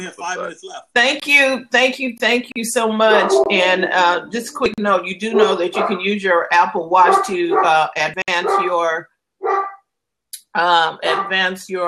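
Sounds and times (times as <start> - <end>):
speech: 0.0 - 9.7, 10.6 - 11.8
dog barking to be let in: 3.1 - 3.7, 5.3 - 6.1, 6.9 - 9.8, 11.0 - 11.5.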